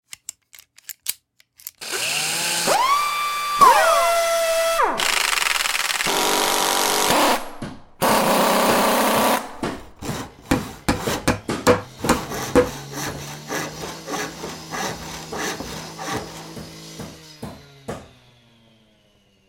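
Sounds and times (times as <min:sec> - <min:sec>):
tools being used: 0:00.1 - 0:18.1.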